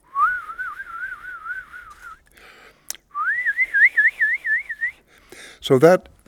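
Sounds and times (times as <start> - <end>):
person whistling sustained notes with wavering vibrato: 0.1 - 2.2, 3.1 - 5.0
speech: 5.7 - 6.1.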